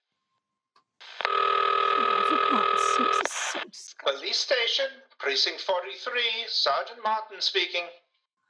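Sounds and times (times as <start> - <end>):
telephone buzzing ring tone down the line: 1.2 - 3.2
faint murmuring: 2.0 - 4.4
speech: 4.1 - 8.0.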